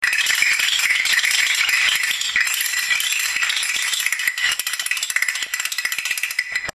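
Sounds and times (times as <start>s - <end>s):
castanets: 0.0s - 6.7s.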